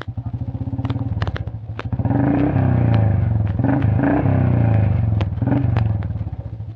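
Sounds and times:
motorcycle engines revving with crackling pops: 0:00.0 - 0:06.7.

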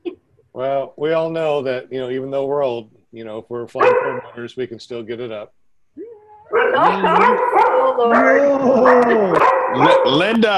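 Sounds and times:
speech: 0:00.6 - 0:05.6, 0:06.7 - 0:10.5
dog barking: 0:03.8 - 0:04.4, 0:06.5 - 0:10.3.

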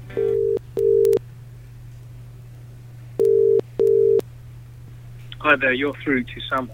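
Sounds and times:
phone line double-burst ringing tones: 0:00.1 - 0:01.2, 0:03.2 - 0:04.2
speech: 0:05.4 - 0:06.7.

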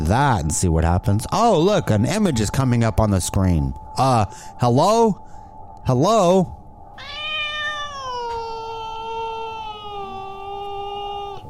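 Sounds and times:
speech: 0:00.1 - 0:07.2
cat meowing: 0:07.0 - 0:11.4.

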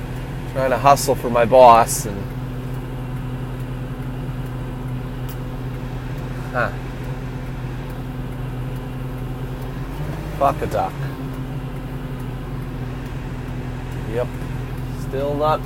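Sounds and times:
tractor engine idling in traffic: 0:00.0 - 0:15.6
speech: 0:00.5 - 0:02.4, 0:06.6 - 0:06.9, 0:10.4 - 0:11.2, 0:14.1 - 0:14.4, 0:15.1 - 0:15.6
man muttering: 0:06.5 - 0:06.8.

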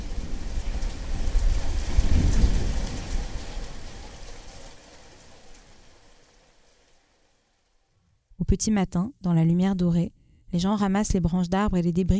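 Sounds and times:
deep rumble of thunder: 0:00.0 - 0:06.2
wind in a thunderstorm: 0:00.0 - 0:07.1
steady rain pouring down in a thunderstorm: 0:00.0 - 0:07.9
speech: 0:08.5 - 0:12.1.

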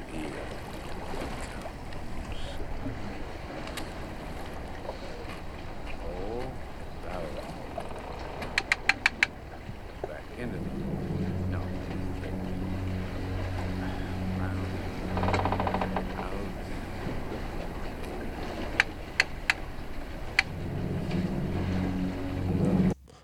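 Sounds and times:
steady low drone of a boat engine: 0:00.0 - 0:23.2
wind: 0:00.0 - 0:23.2
fishing reel clicking as line pulls out: 0:08.4 - 0:09.3.

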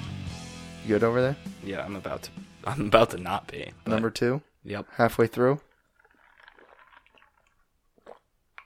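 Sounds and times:
speech: 0:00.9 - 0:05.7
person gulping down a drink: 0:05.5 - 0:08.6.

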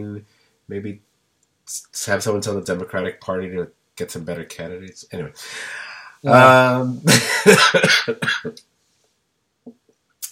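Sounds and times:
speech: 0:00.0 - 0:01.1, 0:01.7 - 0:08.7
brief soft breath: 0:05.4 - 0:06.3
harsh coughs: 0:07.1 - 0:08.6.

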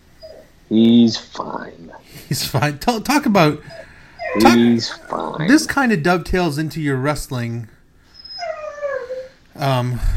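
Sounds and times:
dog whining and howling: 0:00.2 - 0:00.6, 0:03.7 - 0:05.3, 0:08.1 - 0:09.4
speech: 0:00.7 - 0:07.8, 0:09.6 - 0:10.1.

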